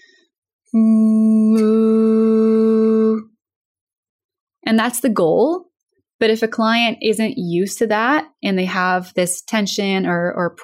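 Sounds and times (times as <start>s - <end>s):
speech: 0.7s - 1.1s, 4.7s - 10.6s
voice sustaining ooh vowel with bright forward resonance: 0.7s - 3.3s.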